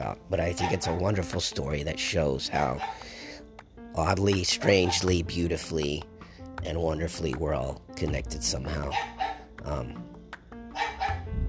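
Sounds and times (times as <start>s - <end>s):
speech: 0.1s - 3.1s, 4.0s - 10.1s
dog barking: 0.6s - 1.1s, 2.6s - 3.2s, 4.6s - 5.2s, 8.8s - 9.5s, 10.7s - 11.3s.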